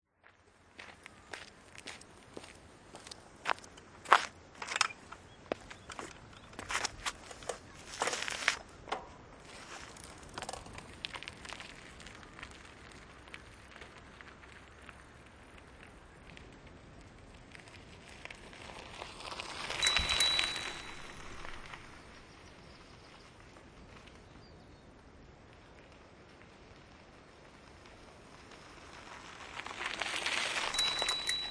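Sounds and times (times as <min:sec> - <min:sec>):
bicycle ride: 0:00.2 - 0:31.4.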